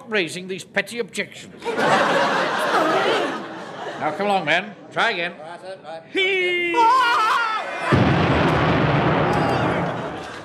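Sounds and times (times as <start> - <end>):
speech: 0.1 - 3.4, 4.0 - 8.3
laughter: 1.6 - 4.8, 9.4 - 10.4
landmine explosion: 7.9 - 10.4.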